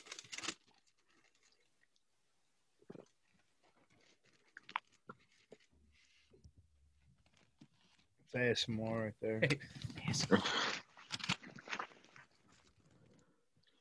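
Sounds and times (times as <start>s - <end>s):
paper crinkling as a man takes it out: 0.0s - 1.9s, 3.6s - 6.3s, 10.0s - 13.2s
speech: 8.3s - 10.7s.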